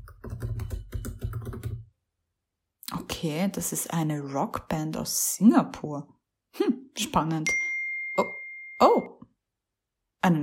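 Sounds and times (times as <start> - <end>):
typing on a computer keyboard: 0.0 - 1.9
speech: 3.2 - 7.6, 10.3 - 10.4.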